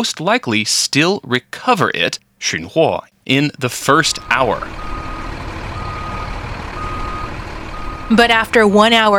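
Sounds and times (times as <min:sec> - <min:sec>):
speech: 0:00.0 - 0:05.0, 0:08.1 - 0:09.1
garbage truck engine rumbling: 0:03.8 - 0:09.1
thin high garbage truck reversing beep: 0:04.1 - 0:08.5.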